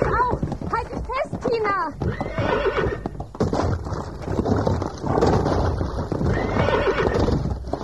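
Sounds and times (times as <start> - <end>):
clatter of horse hooves: 0.0 - 7.8
speech: 1.5 - 2.7
horses neighing and whinnying as they rear behind a fence: 1.5 - 3.8, 4.7 - 7.8.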